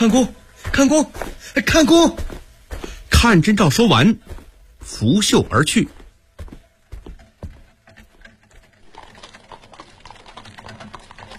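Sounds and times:
speech: 0.0s - 2.4s, 3.2s - 6.0s
faint hoofbeats of a horse-drawn carriage: 6.9s - 11.3s.

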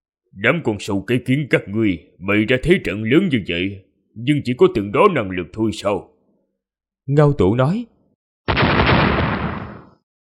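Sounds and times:
speech: 0.4s - 6.1s, 7.1s - 7.9s
thunderous explosion bursting overhead: 8.5s - 10.0s.

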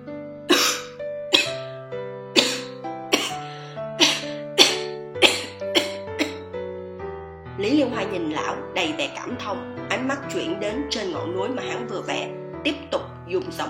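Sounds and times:
faint steady tonal background: 0.0s - 13.6s
man coughing violently: 0.5s - 1.6s, 2.4s - 3.4s, 4.0s - 6.4s
speech: 7.9s - 13.6s.

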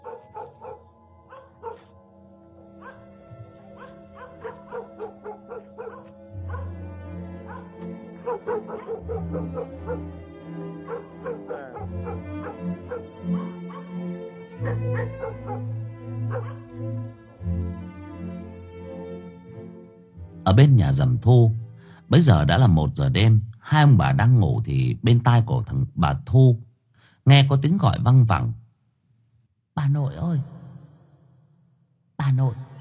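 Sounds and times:
dogs whimpering: 0.0s - 2.0s, 2.8s - 6.8s, 7.4s - 10.2s, 10.8s - 14.0s, 14.6s - 15.7s, 16.3s - 16.6s
dogs barking and yipping in a village at night: 0.0s - 17.0s
speech: 20.6s - 26.6s, 27.2s - 28.6s, 29.8s - 30.5s, 32.3s - 32.6s.

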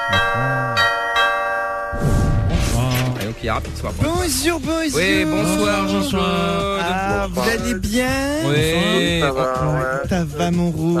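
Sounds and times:
doorbell chime at the entrance of a home: 0.0s - 2.0s
brief burst of noise: 2.0s - 3.6s
speech: 3.4s - 10.9s.

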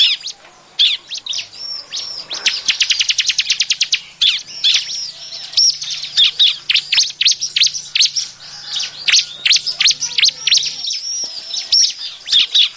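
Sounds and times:
Bar-winged prinia song with sharp high notes and squeaky chirps: 0.0s - 12.7s.

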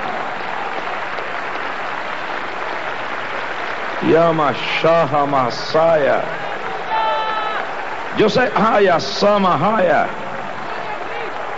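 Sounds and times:
church congregation applauding: 0.0s - 11.5s
speech: 4.0s - 6.5s, 8.2s - 10.2s.

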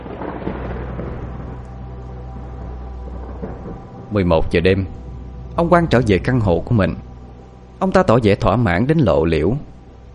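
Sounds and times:
rain hitting a window during a storm: 0.0s - 8.0s
thunder rumbling during a storm: 0.0s - 10.1s
speech: 3.5s - 5.0s, 5.6s - 7.0s, 7.8s - 9.7s.

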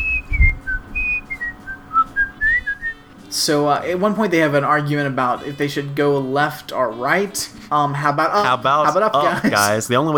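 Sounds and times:
soft low thump: 0.0s - 1.5s
person whistling a TV show theme tune: 0.0s - 3.0s
speech: 3.3s - 10.1s.

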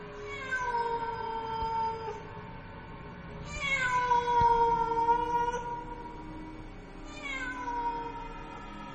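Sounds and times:
cat meowing mournfully at night: 0.2s - 2.2s, 3.4s - 6.2s, 7.1s - 8.5s.

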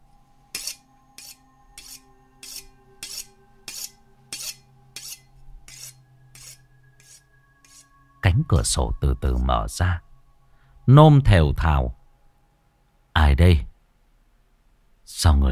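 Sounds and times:
faint constant hum: 0.0s - 15.5s
blade drawn over a sharpening stone outside by a well: 0.5s - 8.0s
speech: 8.4s - 10.1s, 10.9s - 12.0s, 13.2s - 13.7s, 15.2s - 15.5s.

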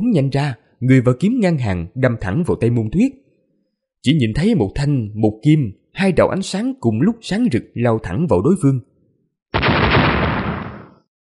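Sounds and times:
speech: 0.0s - 3.2s, 4.0s - 8.9s
loud explosion in a fantasy sword battle: 9.6s - 11.0s.

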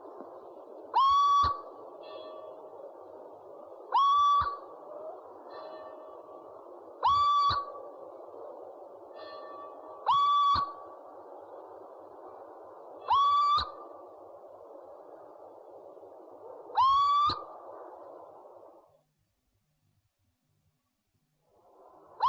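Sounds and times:
steady background noise: 0.0s - 22.2s
owl calling with upslurred whistles: 0.8s - 8.6s, 9.2s - 11.1s, 12.9s - 14.0s, 16.4s - 17.7s.

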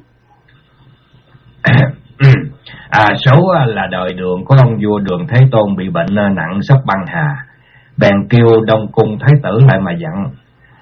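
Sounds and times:
man clearing his throat: 1.6s - 2.9s
speech: 3.0s - 10.4s.

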